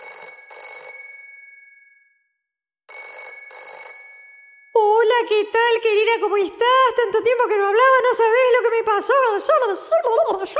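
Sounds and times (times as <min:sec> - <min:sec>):
telephone bell ringing loudly: 0:00.0 - 0:02.2, 0:02.9 - 0:04.8
speech: 0:05.2 - 0:10.5.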